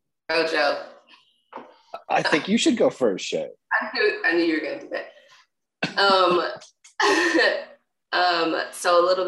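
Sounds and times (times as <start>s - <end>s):
speech: 0.3s - 0.9s, 1.5s - 5.1s, 5.9s - 9.2s
person clearing throat: 5.8s - 6.5s.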